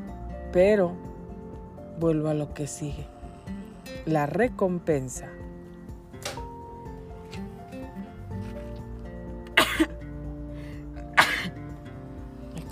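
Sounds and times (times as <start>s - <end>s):
speech: 0.5s - 1.1s, 2.0s - 3.2s, 3.9s - 5.4s
person sneezing: 9.6s - 10.0s, 11.1s - 11.6s.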